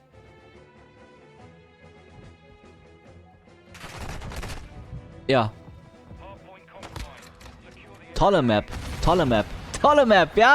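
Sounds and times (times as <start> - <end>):
steady music-like background: 0.0 - 10.5
video game gunfire on a bridge map: 3.8 - 4.8, 8.7 - 10.5
speech: 5.3 - 5.6, 8.2 - 10.5.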